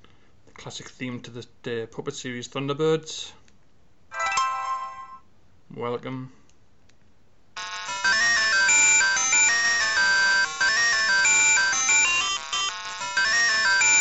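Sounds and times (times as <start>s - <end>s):
speech: 0.6s - 3.4s, 5.8s - 6.4s
buzzy electronic ringtone of retro computer game music: 4.1s - 5.2s, 7.6s - 13.9s.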